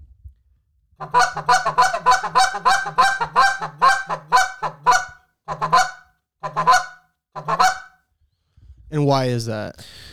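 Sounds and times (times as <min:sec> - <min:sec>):
speech: 0:01.0 - 0:03.8, 0:09.1 - 0:10.0
goose call blown as a stall cluck or murmur cluck: 0:01.0 - 0:07.9.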